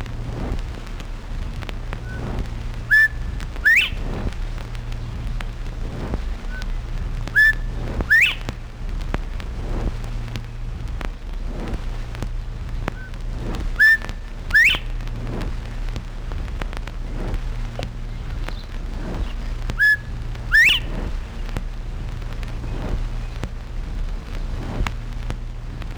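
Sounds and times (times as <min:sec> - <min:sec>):
steady low rumble: 0:00.0 - 0:25.9
northern bobwhite rising two-note whistle: 0:02.0 - 0:05.2, 0:06.4 - 0:08.8, 0:13.0 - 0:15.8, 0:17.8 - 0:21.7.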